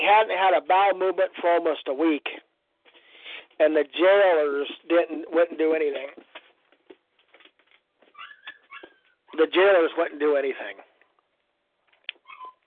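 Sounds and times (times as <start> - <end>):
speech: 0.1 - 2.5, 3.6 - 6.3, 9.3 - 10.9
puppy whimpering and crying: 8.1 - 9.4, 12.2 - 12.6.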